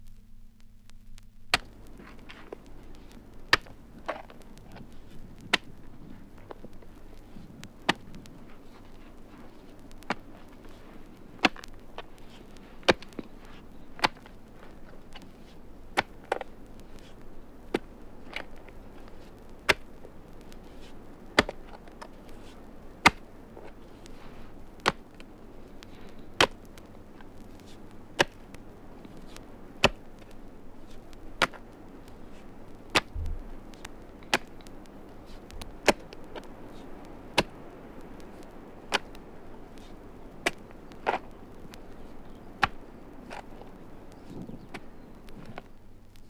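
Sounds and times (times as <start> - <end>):
digging in stony ground: 1.5 - 46.2.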